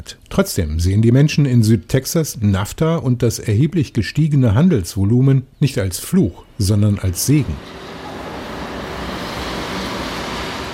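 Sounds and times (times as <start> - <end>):
speech: 0.0 - 7.8
loud 16-wheeler semi trucks rumbling over a bridge between Nuevo Laredo and Laredo: 7.1 - 10.7.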